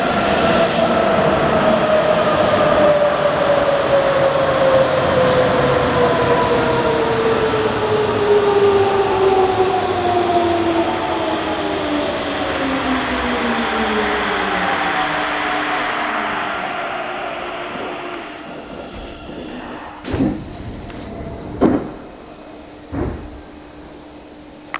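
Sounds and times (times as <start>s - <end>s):
Mitsubishi B gensoku train motor: 0.1s - 24.0s.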